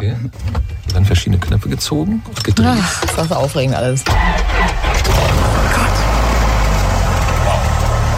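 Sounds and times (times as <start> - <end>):
speech: 0.0 - 5.6
Cessna 172 Skyhawk propeller aircraft engine running: 4.4 - 8.1.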